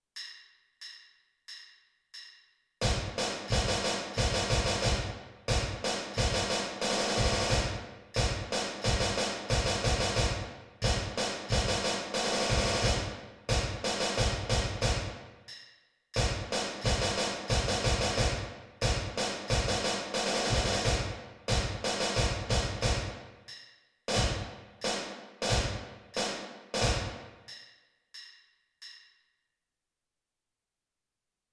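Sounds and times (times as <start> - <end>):
bass drum: 2.8 - 15.2, 16.2 - 23.2, 24.1 - 24.6
snare drum: 2.8 - 15.2, 16.2 - 23.3, 24.1 - 27.4.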